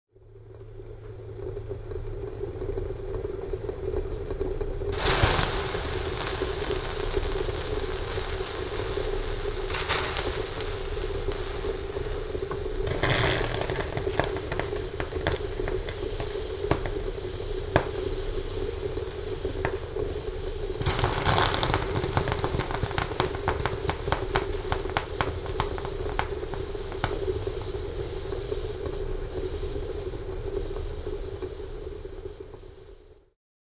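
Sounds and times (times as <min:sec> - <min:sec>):
water boiling in a pot: 0:00.1 - 0:33.4.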